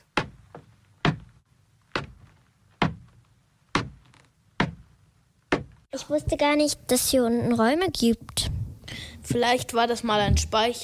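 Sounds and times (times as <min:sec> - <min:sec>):
heavy footsteps on creaking steps of a steep wooden staircase: 0:00.0 - 0:04.9
speech: 0:06.0 - 0:08.3, 0:09.3 - 0:10.8.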